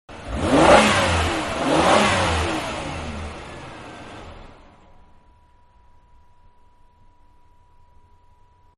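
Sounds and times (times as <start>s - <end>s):
big car accelerating off, exterior: 0.1s - 5.0s.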